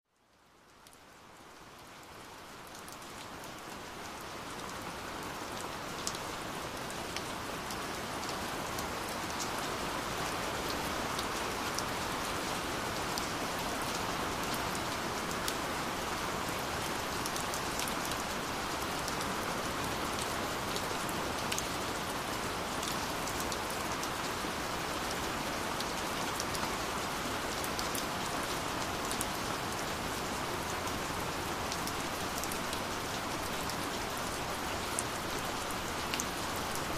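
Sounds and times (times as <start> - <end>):
rain: 0.0 - 36.9.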